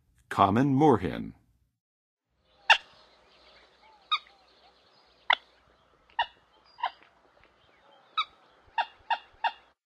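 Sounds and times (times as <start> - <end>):
common moorhen calling in Western USA: 2.3 - 9.8.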